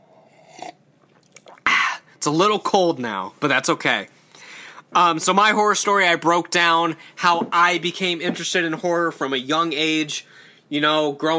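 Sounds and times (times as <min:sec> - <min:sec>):
person sipping cold tea: 0:00.0 - 0:02.1
faint small mouth or cup sounds: 0:00.0 - 0:02.2
speech: 0:02.2 - 0:04.2, 0:04.9 - 0:11.3.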